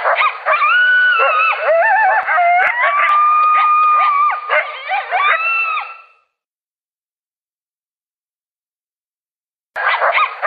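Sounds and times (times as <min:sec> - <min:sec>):
coyote group howling: 0:00.0 - 0:06.2
coyotes yipping and yelping: 0:00.0 - 0:06.2, 0:09.8 - 0:10.4.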